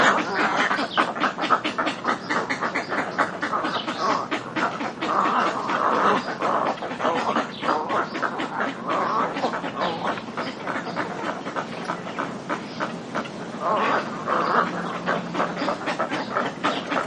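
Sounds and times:
many little egrets giving harsh croaking calls: 0:00.0 - 0:17.0.

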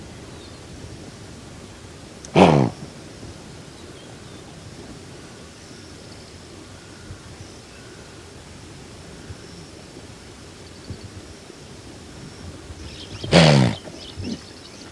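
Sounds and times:
background hiss: 0:00.0 - 0:14.9
blue wildebeest grunting: 0:02.3 - 0:02.8, 0:13.2 - 0:14.4.

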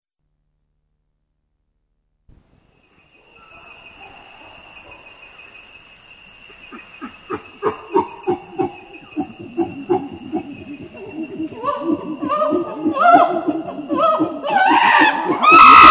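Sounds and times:
insect buzz: 0:02.3 - 0:15.8
common chimpanzee pant-hoot: 0:06.7 - 0:15.6.

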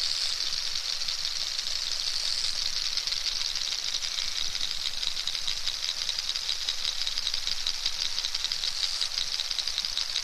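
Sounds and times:
steady hiss: 0:00.0 - 0:10.2
narwhal clicking: 0:03.0 - 0:10.2.

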